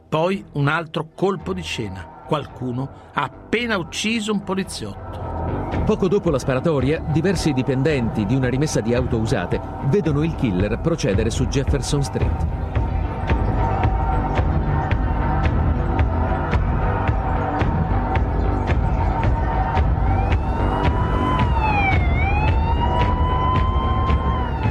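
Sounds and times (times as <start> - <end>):
speech: 0.1 - 12.8
police car sirens wailing as cars speed past a movie theater in Texas: 6.5 - 24.6
police cars speeding past a movie theater in Texas: 19.7 - 24.6.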